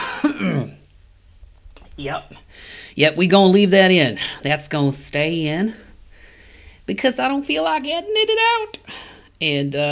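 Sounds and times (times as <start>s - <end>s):
person clearing a scratchy itchy throat: 0.0s - 0.8s
speech: 2.0s - 5.8s, 6.9s - 9.9s.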